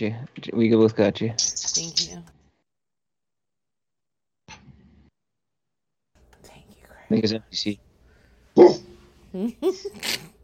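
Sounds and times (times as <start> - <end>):
speech: 0.0 - 2.1, 7.1 - 7.8, 8.6 - 10.3
dog barking: 8.6 - 9.0.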